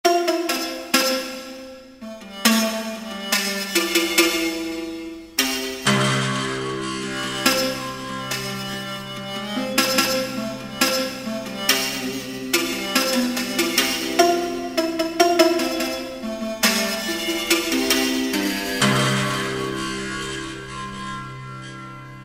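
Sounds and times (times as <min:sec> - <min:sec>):
Thai zither playing: 0:00.0 - 0:22.2.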